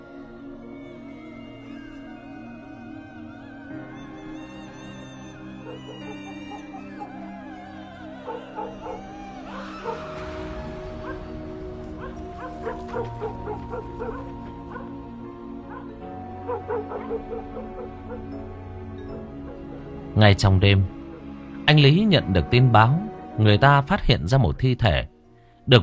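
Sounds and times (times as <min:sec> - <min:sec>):
black dog barking loudly with yips and whimpering: 0:12.0 - 0:15.0, 0:15.7 - 0:18.3
speech: 0:20.2 - 0:21.0, 0:21.7 - 0:25.1.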